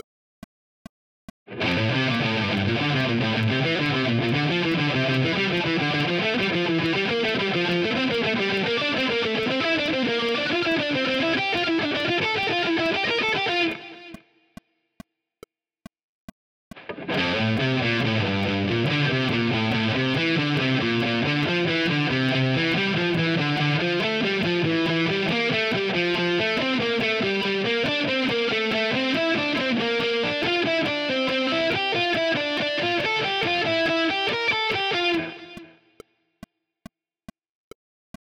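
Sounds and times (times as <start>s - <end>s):
triad arpeggios: 1.6s - 14.1s, 17.1s - 35.7s.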